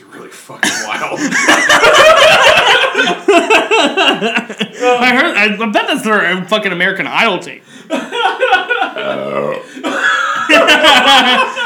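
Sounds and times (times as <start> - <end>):
speech: 0.3 - 2.1, 5.0 - 11.6
laughter: 0.6 - 5.4, 7.7 - 11.6
long loud throaty burp: 9.0 - 9.8.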